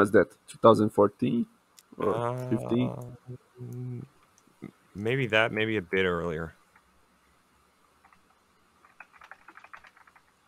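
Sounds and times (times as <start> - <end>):
speech: 0.0 - 6.6
typing on a non-mechanical computer keyboard: 8.8 - 10.3.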